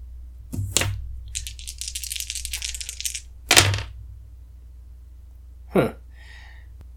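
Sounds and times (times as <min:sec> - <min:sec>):
dice clattering and tumbling on a hard surface: 0:00.6 - 0:03.9
speech: 0:05.8 - 0:06.0.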